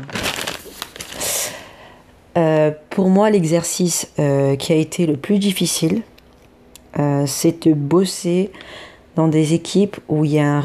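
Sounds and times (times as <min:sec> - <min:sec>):
sheet of paper rustling and crinkling: 0:00.0 - 0:01.7
speech: 0:02.4 - 0:06.1, 0:07.0 - 0:10.6.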